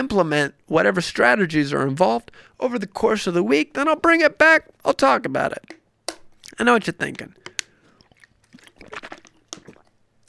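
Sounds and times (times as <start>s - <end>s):
speech: 0.0s - 5.8s, 6.6s - 7.4s
person sipping and swallowing water: 5.5s - 10.2s.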